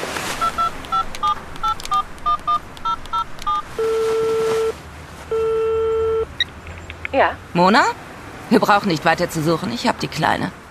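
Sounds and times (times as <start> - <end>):
mobile phone keypad tones from a number being dialled: 0.4 - 6.5
speech: 7.2 - 10.6.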